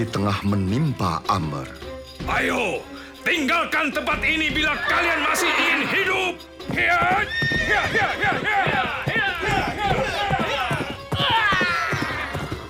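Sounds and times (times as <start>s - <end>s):
speech: 0.0s - 9.8s
galloping horse hooves: 2.0s - 12.6s
ridden horse whinnying while struggling to leap over a trench: 4.5s - 12.6s.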